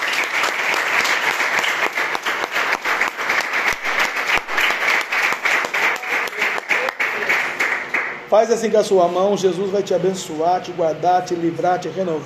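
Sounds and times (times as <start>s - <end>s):
audience applauding: 0.0s - 8.2s
speech: 8.3s - 12.2s.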